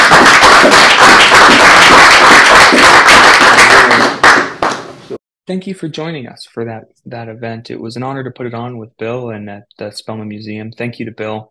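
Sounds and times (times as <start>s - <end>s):
audience applause at a live stamp expertizing event in a museum: 0.0s - 5.0s
speech: 5.5s - 11.4s.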